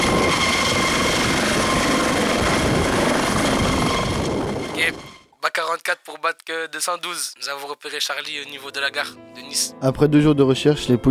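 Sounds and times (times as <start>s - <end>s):
helicopter rotor thumping with engine roar: 0.0s - 5.2s
speech: 5.8s - 11.1s.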